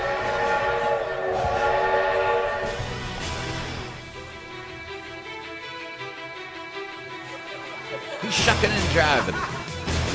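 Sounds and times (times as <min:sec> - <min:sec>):
train whistle blowing a multi-tone chord: 0:00.0 - 0:03.6
low rumble of the train: 0:00.0 - 0:10.1
laughter: 0:06.9 - 0:10.1
speech: 0:08.3 - 0:09.6.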